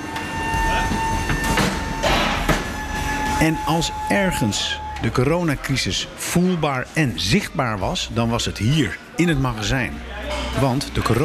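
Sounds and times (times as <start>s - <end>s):
forklift trucks driving through a warehouse: 0.0s - 10.0s
bursts of hissing and clanking from passing forklift trucks: 0.2s - 4.0s
speech: 3.4s - 11.2s.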